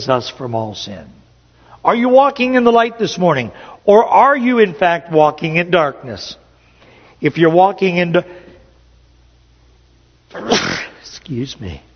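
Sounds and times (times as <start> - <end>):
speech: 0.0 - 1.2, 1.8 - 6.4, 7.2 - 8.4, 11.3 - 11.9
person sneezing indoors: 10.3 - 11.1.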